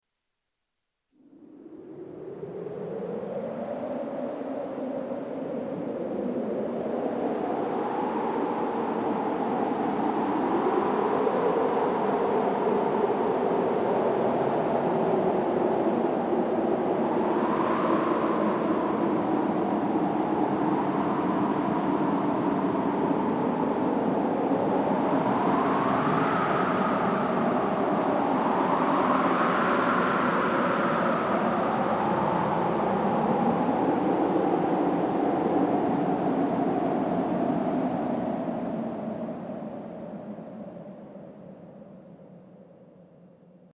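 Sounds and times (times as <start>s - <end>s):
synthesized wind with polyphonic filtering: 1.2s - 43.1s.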